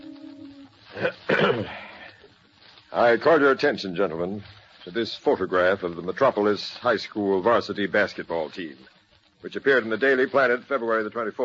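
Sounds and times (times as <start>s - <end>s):
speech: 1.0s - 1.8s, 2.9s - 11.4s
man clearing his throat: 1.0s - 1.9s.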